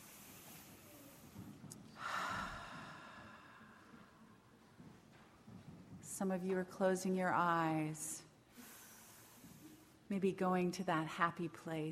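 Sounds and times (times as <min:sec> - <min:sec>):
slow deep breathing during meditation: 0:00.0 - 0:04.6, 0:08.5 - 0:10.0
speech: 0:06.2 - 0:08.2, 0:10.1 - 0:11.9.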